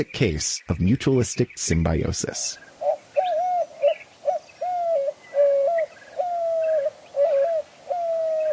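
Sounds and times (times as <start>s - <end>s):
speech: 0.0s - 2.7s
faint birdsong: 0.0s - 8.5s
dove cooing: 2.7s - 8.5s.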